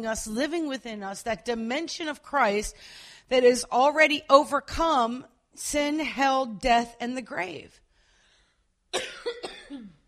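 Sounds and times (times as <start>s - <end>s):
speech: 0.0s - 7.8s, 8.9s - 9.9s
person coughing from a dry scratchy throat: 9.0s - 10.0s.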